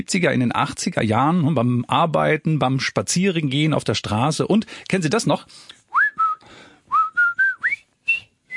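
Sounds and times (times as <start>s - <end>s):
speech: 0.0s - 5.8s
clear whistled tune of short bright notes with upward slides: 5.9s - 8.5s.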